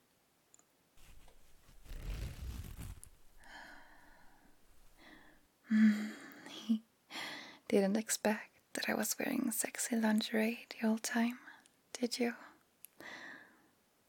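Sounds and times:
dress zipper being unzipped: 1.0s - 5.3s
speech: 7.7s - 12.5s.

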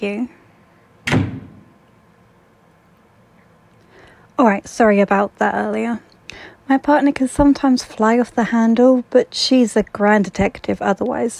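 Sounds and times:
speech: 0.0s - 0.4s, 4.4s - 11.3s
door swinging shut with a firm thud and rattle: 1.0s - 1.8s.

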